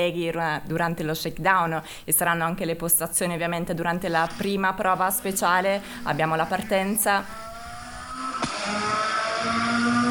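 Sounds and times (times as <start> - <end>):
speech: 0.0 - 7.5
rally car engines roaring: 7.2 - 10.0
sharp crack: 8.3 - 9.2.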